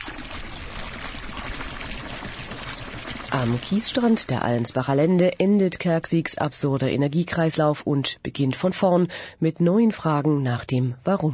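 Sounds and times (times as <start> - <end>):
water sloshing and gurgling inside a plastic canister: 0.0 - 4.9
speech: 3.4 - 11.3.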